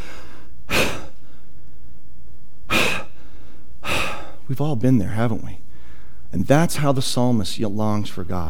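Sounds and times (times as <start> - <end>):
speaker imitating heavy panting breaths: 0.0 - 1.4, 2.7 - 4.4
speech: 4.5 - 5.6, 6.3 - 8.4.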